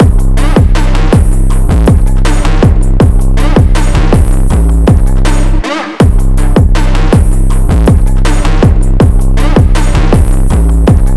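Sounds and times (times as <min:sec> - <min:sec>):
drum loop at 160 BPM: 0:00.0 - 0:11.1.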